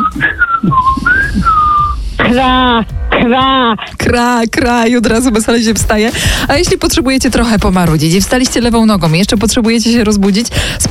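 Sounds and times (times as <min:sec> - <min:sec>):
person whistling bird-like notes imitating a bird on a radio show: 0:00.0 - 0:02.0
speech: 0:00.2 - 0:01.0, 0:03.3 - 0:10.9.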